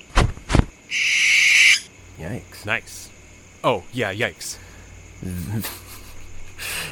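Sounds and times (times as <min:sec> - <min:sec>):
owl hooting: 0:00.9 - 0:01.9
speech: 0:02.2 - 0:05.8
laughter: 0:05.3 - 0:06.9.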